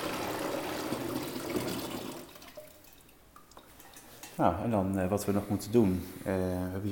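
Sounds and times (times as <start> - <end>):
brew mixture pouring into a fermenting bucket: 0.0 - 4.3
speech: 4.4 - 6.9.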